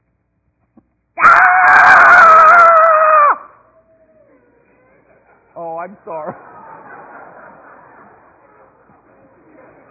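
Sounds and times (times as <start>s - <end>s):
adult voice imitating a four-year-old boy's angry scream: 1.2s - 3.7s
laughter: 4.3s - 9.8s
speech: 5.9s - 6.6s.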